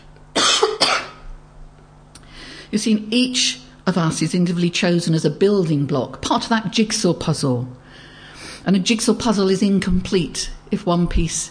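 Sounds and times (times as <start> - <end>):
man coughing: 0.4 - 1.2
speech: 2.7 - 11.4.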